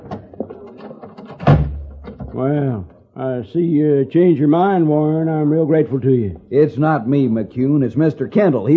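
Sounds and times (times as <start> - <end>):
door swinging shut with a heavy thud: 1.3 - 2.4
speech: 2.4 - 8.7.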